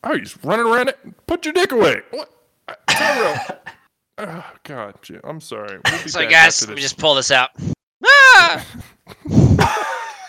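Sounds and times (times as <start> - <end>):
speech: 0.0 - 9.0
man screaming, loud and strained: 8.0 - 8.7.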